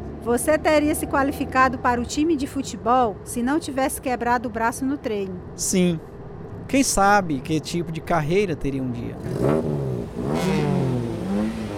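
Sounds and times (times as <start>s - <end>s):
speech: 0.2s - 6.1s, 6.7s - 10.6s
car engine revving hard and accelerating: 9.0s - 11.7s.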